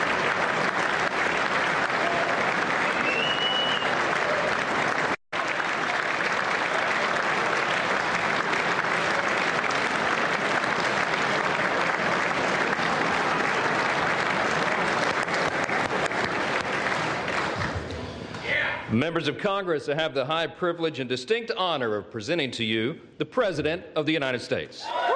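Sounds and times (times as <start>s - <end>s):
large audience applauding in a legislative chamber: 0.0s - 18.0s
speech: 19.0s - 25.1s.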